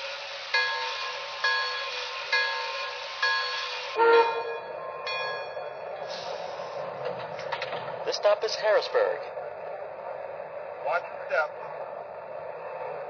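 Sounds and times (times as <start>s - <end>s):
passenger train engine rumble at a station platform: 0.0s - 13.0s
passenger train horn-like tone: 3.9s - 4.7s
speech: 8.2s - 9.4s, 10.9s - 11.6s.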